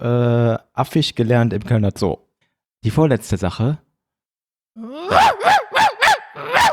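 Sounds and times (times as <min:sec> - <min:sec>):
speech: 0:00.0 - 0:02.2, 0:02.8 - 0:03.8
person imitating a dog barking with whine and woofs in an animal-guessing game: 0:04.8 - 0:06.7.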